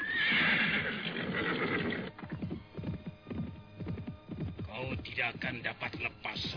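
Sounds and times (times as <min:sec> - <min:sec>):
horse neighing: 0:00.0 - 0:02.5
galloping horse hooves: 0:00.0 - 0:06.5
speech: 0:05.2 - 0:06.5.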